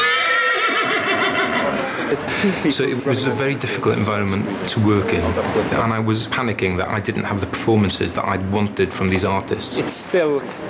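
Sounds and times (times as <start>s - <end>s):
terrified horse neighing: 0.0s - 1.9s
speech: 2.1s - 10.6s.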